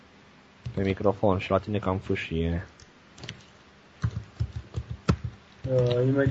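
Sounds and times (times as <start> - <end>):
speech: 0.8 - 2.8, 5.7 - 6.3
keys clacking on a computer keyboard picked up by internal microphone: 4.0 - 6.3.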